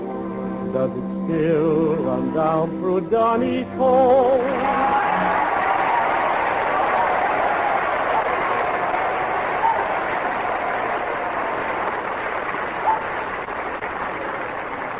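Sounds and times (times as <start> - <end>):
speech: 0.7 - 5.4
large studio audience applauding a contestant in a talent contest: 4.4 - 14.9.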